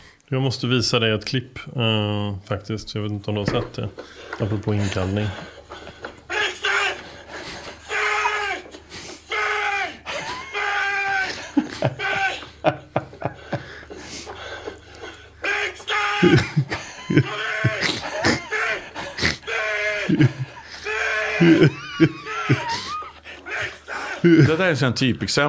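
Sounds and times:
speech: 0.3 - 5.6, 24.4 - 25.4
laughter: 3.9 - 9.2, 10.0 - 24.8
man yelling at a dog: 6.3 - 7.1, 7.8 - 12.6, 15.4 - 24.6.

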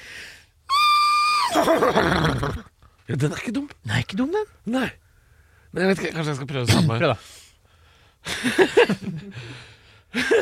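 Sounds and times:
person imitating a horse neighing: 0.7 - 2.7
speech: 1.5 - 5.0, 5.7 - 7.4, 8.2 - 10.3.

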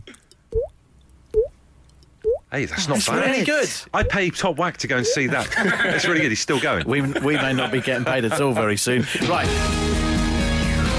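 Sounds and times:
mouth imitation of a dripping tap: 0.5 - 2.5, 4.0 - 4.2
speech: 2.5 - 9.9
laughter: 5.0 - 9.4.

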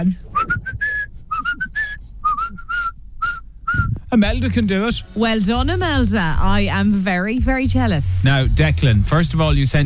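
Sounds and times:
speech: 0.0 - 0.4, 4.1 - 9.8
person whistling a lilting tune in a car: 0.4 - 4.0.

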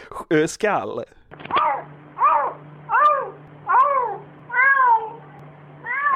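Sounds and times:
speech: 0.3 - 1.2
faint low hum: 1.1 - 6.1
cat meowing: 1.6 - 6.1.

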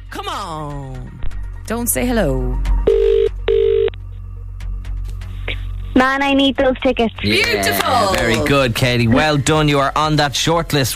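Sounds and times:
speech: 0.3 - 3.0, 6.0 - 10.9
telephone ringing with steady electronic tone: 2.9 - 4.0.

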